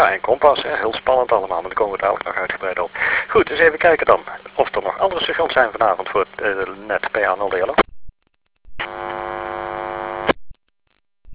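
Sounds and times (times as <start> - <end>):
speech: 0.0 - 7.9
steady unmodulated radio carrier with a light hum: 0.0 - 7.9, 8.8 - 10.4.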